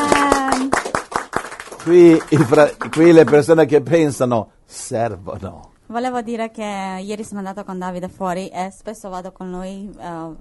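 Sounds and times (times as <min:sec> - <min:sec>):
audience clapping at a church gathering: 0:00.0 - 0:03.8
speech: 0:01.8 - 0:10.4.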